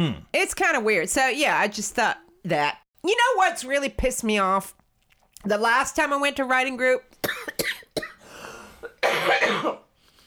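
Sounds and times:
speech: 0.0 - 4.8, 5.4 - 7.8, 9.0 - 9.8
person coughing harshly and chestily: 7.2 - 8.2, 8.8 - 9.9.

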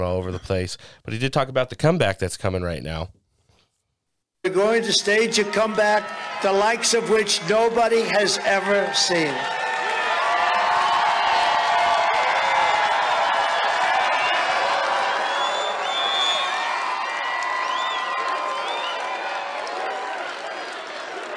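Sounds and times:
speech: 0.1 - 3.2, 4.4 - 9.6
large rally crowd cheering: 4.5 - 21.3
people clapping: 4.6 - 21.3
whoops and shouts from rally crowd: 7.9 - 21.3.

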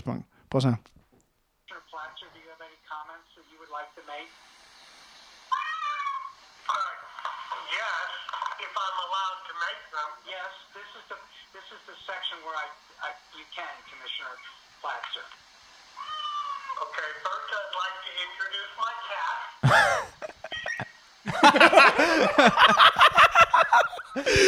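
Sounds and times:
speech: 0.0 - 1.0, 9.2 - 16.2, 16.8 - 20.3, 21.5 - 23.1, 23.8 - 24.4
cat meowing through tinny video playback: 16.0 - 16.8
laughter: 19.6 - 24.4.

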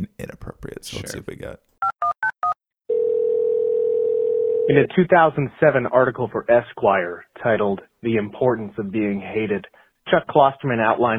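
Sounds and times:
speech: 0.2 - 1.7, 4.7 - 11.1
telephone dial tone: 2.4 - 4.7.

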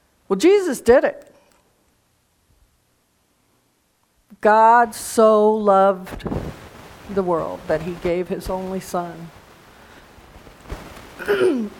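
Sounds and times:
speech: 0.3 - 1.3, 4.4 - 9.4, 11.2 - 11.7
cough into the microphone: 11.2 - 11.7.

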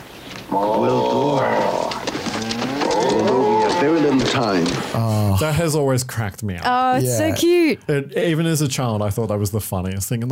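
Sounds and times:
speech: 0.5 - 1.6, 4.1 - 10.3
cow mooing: 0.5 - 4.3.

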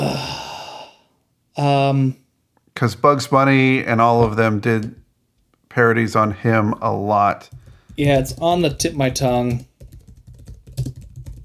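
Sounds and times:
speech: 1.6 - 2.2, 2.8 - 5.0, 5.7 - 9.7
typing on a computer keyboard: 7.4 - 11.4.

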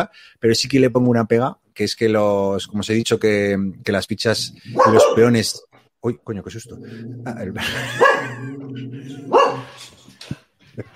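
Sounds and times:
speech: 0.0 - 10.0, 10.8 - 10.9
quiet murmurs: 4.3 - 5.3, 6.5 - 9.8
dog barking loudly: 4.7 - 5.5, 7.8 - 8.5, 9.2 - 9.8
low drawn-out vocal tone: 6.6 - 9.3
laughter: 7.2 - 10.9.

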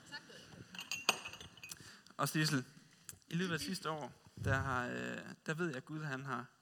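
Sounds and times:
ceramic teacup tapping against its saucer: 0.8 - 1.8
speech: 2.2 - 6.5.

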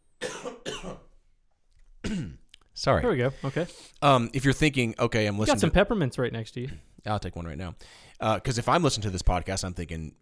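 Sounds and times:
person coughing to clear the throat: 0.2 - 1.1, 2.0 - 2.4, 5.5 - 5.7
speech: 2.1 - 10.1.

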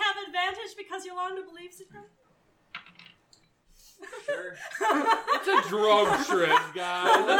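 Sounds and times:
speech: 0.8 - 2.2, 4.0 - 7.3
dice rolling on a table: 2.7 - 3.4
laughter: 4.0 - 7.3.

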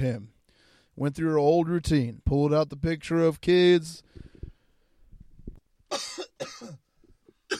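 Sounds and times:
speech: 0.0 - 0.3, 1.0 - 4.3
harsh loud coughs close to the mic: 5.9 - 7.5.

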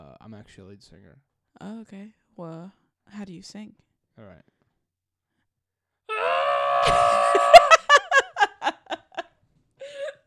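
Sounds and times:
speech: 0.3 - 4.5
person letting out a wavering half-hearted scream: 6.1 - 8.2
person laughing in short choppy laughs: 6.8 - 9.2.

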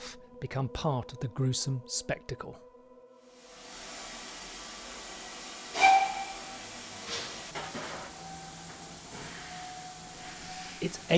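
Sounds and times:
speech: 0.4 - 2.7, 10.8 - 11.1
steam train whistle shrieking: 3.4 - 11.1.

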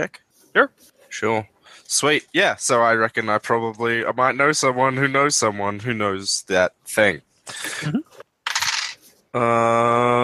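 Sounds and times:
speech: 0.0 - 8.1, 9.3 - 10.2
dice rolling and rattling on a hard surface: 8.5 - 9.0.

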